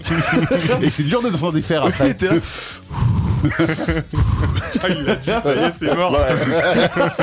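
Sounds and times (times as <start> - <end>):
laughter: 0.0 - 2.6, 3.3 - 7.2
speech: 0.1 - 7.2
exaggerated mock-hyperventilating breathing: 2.3 - 4.8.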